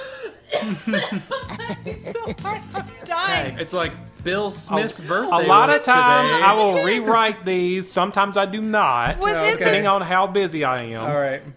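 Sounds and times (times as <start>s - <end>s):
person coughing: 0.0s - 3.1s
laughter: 0.6s - 3.6s, 4.6s - 7.3s
speech: 0.6s - 11.5s.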